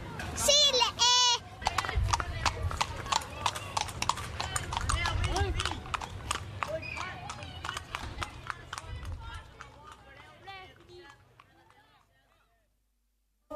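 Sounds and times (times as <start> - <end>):
speech: 0.3 - 0.5
horse hooves clip-clopping: 1.6 - 12.1.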